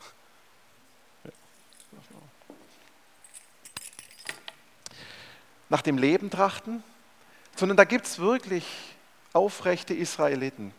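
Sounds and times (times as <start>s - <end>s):
speech: 1.2s - 2.8s, 5.7s - 6.9s, 7.6s - 10.7s
keys jangling: 1.4s - 4.6s.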